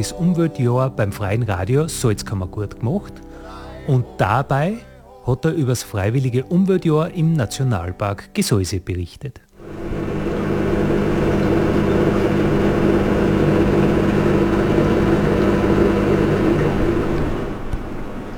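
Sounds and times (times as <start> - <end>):
speech: 0.0 - 3.3, 3.9 - 9.8
dishwasher running inside a hunter's cabin in a national park: 9.6 - 18.3.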